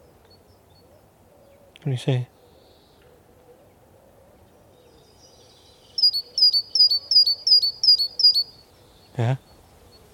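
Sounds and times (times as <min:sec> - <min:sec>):
speech: 0:01.8 - 0:02.4, 0:09.2 - 0:09.5
great tit call outdoors in Skuldborg, Denmark: 0:06.0 - 0:09.6.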